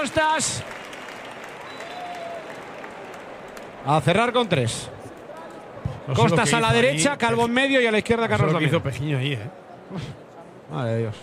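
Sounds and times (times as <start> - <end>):
speech: 0.0 - 0.9, 3.8 - 5.0, 6.1 - 11.2
football stadium crowd applauding a substituted player: 0.0 - 5.6.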